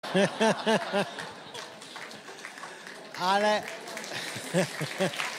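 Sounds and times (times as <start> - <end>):
person laughing: 0.1 - 1.2, 4.2 - 5.2.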